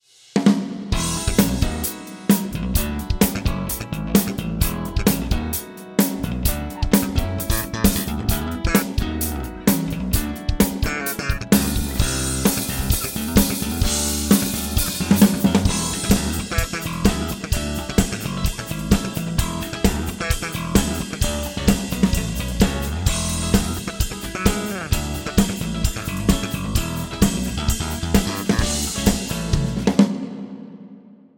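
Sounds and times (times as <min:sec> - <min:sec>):
Korg A1 drum slap with spring effect: 0:01.0 - 0:30.0.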